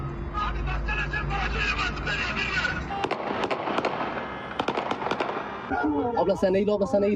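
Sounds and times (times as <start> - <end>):
raised voices: 0.0 - 3.4, 5.6 - 6.4
gunfire in a police shootout with armed suspects: 2.9 - 5.9
speech: 5.8 - 7.1.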